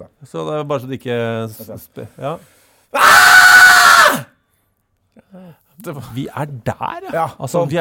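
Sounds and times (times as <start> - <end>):
speech: 0.0 - 3.4, 4.1 - 4.3, 5.2 - 7.8
person re-enacting a loud sustained primal scream: 3.0 - 4.3.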